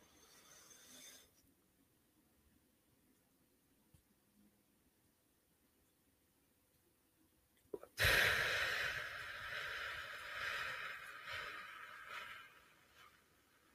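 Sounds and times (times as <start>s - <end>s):
loud airy exhale in a diaphragm breathing exercise: 8.0s - 13.3s.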